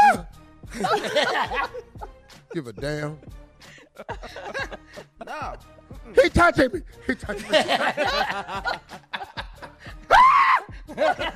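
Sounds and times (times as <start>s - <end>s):
bursts of laughter: 0.7s - 2.6s, 3.8s - 5.7s, 7.3s - 10.0s, 10.7s - 11.3s
speech: 0.8s - 1.9s, 2.5s - 3.4s, 4.0s - 9.1s, 10.9s - 11.3s
chuckling: 0.8s - 2.8s, 3.7s - 5.8s, 7.4s - 10.0s
man screaming high and strained: 10.1s - 10.7s.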